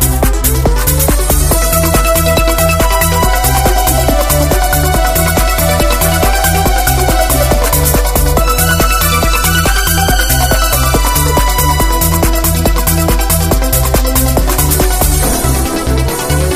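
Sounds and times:
fast music call notification tone: 0:00.2 - 0:16.5.

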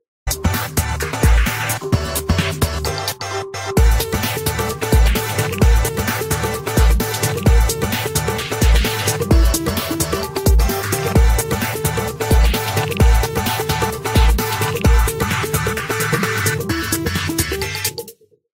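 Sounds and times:
remix music ringtone: 0:00.3 - 0:18.2.

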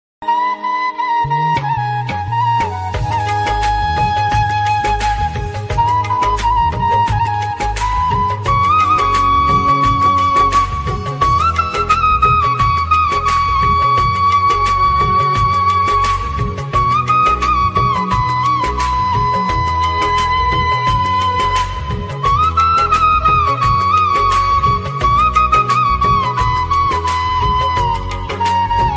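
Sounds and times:
flute instrumental ringtone melody: 0:00.2 - 0:28.9.

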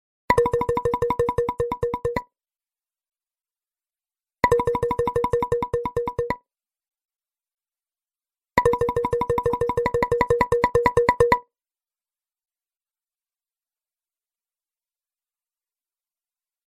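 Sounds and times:
plucked ringtone on a smartphone: 0:00.4 - 0:02.2, 0:04.4 - 0:06.4, 0:08.6 - 0:11.4.

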